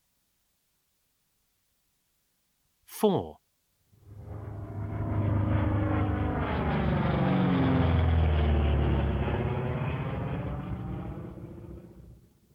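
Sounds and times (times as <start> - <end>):
speech: 3.0 - 3.4
airplane engine roar passing overhead: 4.0 - 12.4.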